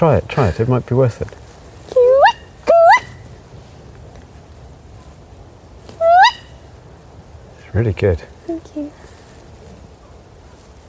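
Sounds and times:
speech: 0.0s - 1.4s, 7.8s - 9.1s
person imitating a female owl call: 1.9s - 3.2s, 6.0s - 6.5s.

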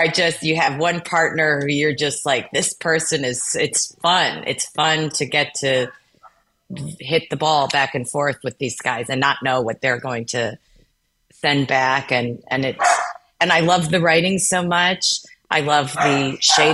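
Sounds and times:
speech: 0.0s - 6.0s, 6.7s - 10.7s, 11.4s - 16.7s
dog barking: 12.8s - 13.2s, 16.0s - 16.7s.

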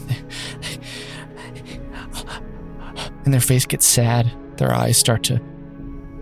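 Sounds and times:
person imitating quick panicked breathing: 0.3s - 3.2s
speech: 3.3s - 5.6s.

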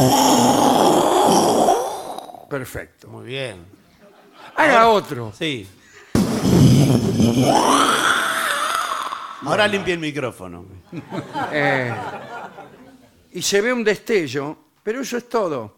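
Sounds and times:
person imitating loud thunder: 0.0s - 2.5s, 6.2s - 9.8s
speech: 2.5s - 3.8s, 4.4s - 5.8s, 6.4s - 8.1s, 9.4s - 15.7s
laughter: 3.9s - 4.9s, 10.8s - 13.2s.

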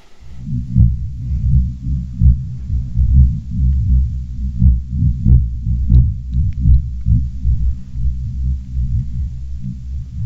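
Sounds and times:
ground vibrations recorded by geophone, deep low rumble with throbbing pulses: 0.3s - 10.2s.

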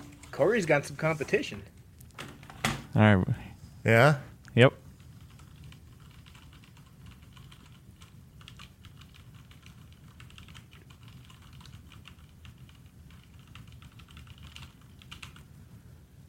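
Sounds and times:
speech: 0.4s - 1.8s, 3.0s - 4.8s
fast typing on a mechanical keyboard: 5.1s - 15.5s.

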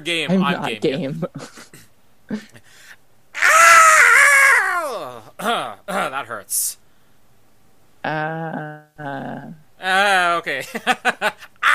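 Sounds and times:
speech: 0.0s - 1.7s, 2.3s - 2.6s, 4.9s - 6.8s, 8.0s - 11.7s
person imitating a blood-curdling scream: 3.4s - 5.3s.

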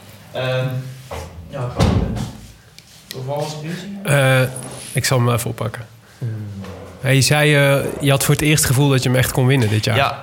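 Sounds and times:
speech: 0.4s - 2.2s, 3.2s - 6.3s, 7.1s - 10.2s
door being pushed shut with soft knocks: 1.2s - 2.4s.

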